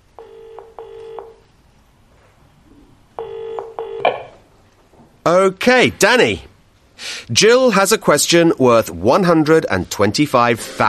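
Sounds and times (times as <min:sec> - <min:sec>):
electronic telephone keypad tones: 0:00.2 - 0:01.4, 0:03.2 - 0:04.3
speech: 0:05.3 - 0:06.5, 0:07.3 - 0:10.8.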